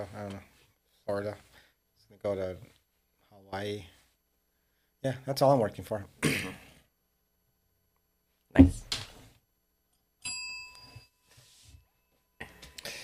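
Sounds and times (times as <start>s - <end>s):
speech: 0.0s - 0.5s, 1.1s - 1.5s, 2.1s - 2.7s, 3.5s - 4.0s, 5.0s - 6.7s
sharp thump: 8.6s - 9.2s
doorbell chime: 10.2s - 11.4s.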